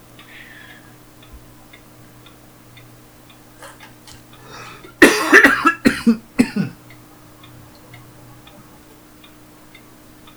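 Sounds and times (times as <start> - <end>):
harsh choking coughs: 3.6 - 6.8.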